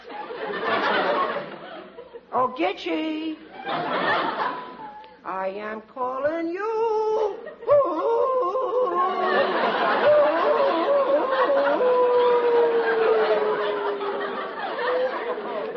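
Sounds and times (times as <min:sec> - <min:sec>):
laughter: 0:00.0 - 0:02.4, 0:03.4 - 0:05.2, 0:07.2 - 0:15.7
speech: 0:02.6 - 0:07.2
murmuring voices: 0:07.7 - 0:15.7
man howling like a wolf: 0:07.8 - 0:14.2.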